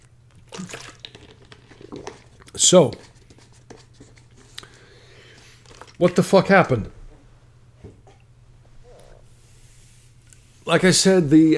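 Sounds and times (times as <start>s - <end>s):
low steady hum: 0.0s - 11.5s
person sipping clean water: 0.4s - 2.6s, 4.3s - 6.0s
speech: 2.6s - 3.1s, 6.0s - 7.0s, 10.7s - 11.5s.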